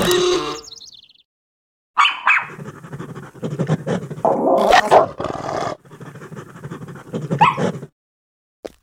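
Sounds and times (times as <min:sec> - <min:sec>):
dog growling and snarling: 0:02.5 - 0:08.0.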